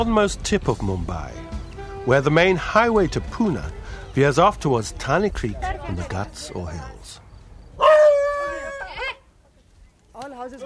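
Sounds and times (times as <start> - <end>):
speech: 0.0 - 1.4, 2.0 - 7.2
dog howling on a windy day near newly built row houses in Mumbai: 7.8 - 9.2.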